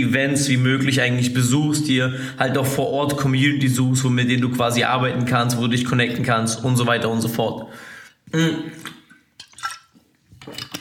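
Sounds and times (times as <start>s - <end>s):
speech: 0.0s - 9.0s
quick sip of water: 7.7s - 10.2s
soft wet gulps and splashy clicks: 8.1s - 10.1s.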